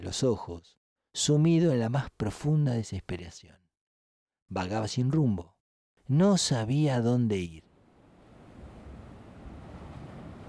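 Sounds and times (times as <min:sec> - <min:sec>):
speech: 0:00.0 - 0:03.6, 0:04.5 - 0:07.7
waves washing against the shore: 0:07.8 - 0:10.4
wind noise: 0:07.8 - 0:10.4.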